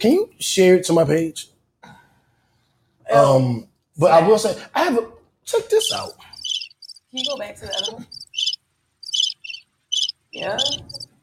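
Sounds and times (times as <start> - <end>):
speech: 0.0 - 2.0, 3.1 - 6.3, 7.1 - 8.2, 10.4 - 11.2
crickets chirping: 5.7 - 11.2.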